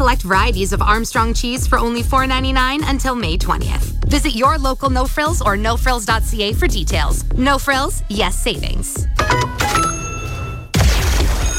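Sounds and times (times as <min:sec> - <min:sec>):
speech: 0:00.1 - 0:09.6
bell ringing to mark the end of the work and school day: 0:09.2 - 0:10.8.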